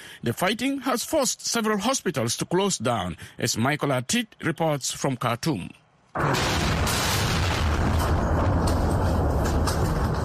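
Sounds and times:
speech: 0.2s - 7.0s
airstrike explosion near military headquarters in Khartoum: 6.2s - 10.2s.

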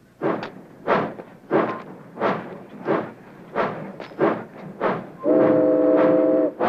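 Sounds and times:
freight train chugging while pulling out: 0.0s - 6.6s
freight train whistle blast: 5.2s - 6.6s.

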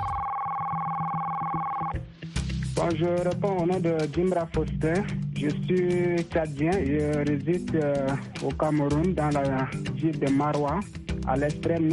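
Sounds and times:
telephone ringing with an electronic tone: 0.0s - 2.0s
faint low pulsing beat: 1.9s - 11.9s
speech: 2.8s - 11.9s.

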